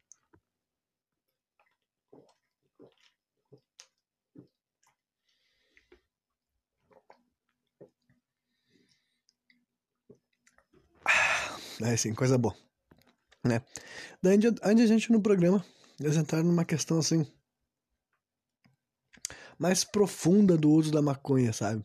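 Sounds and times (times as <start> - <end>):
person gulping a glass of water: 1.3 - 11.8
speech: 11.8 - 12.7, 13.5 - 17.4, 19.6 - 21.8.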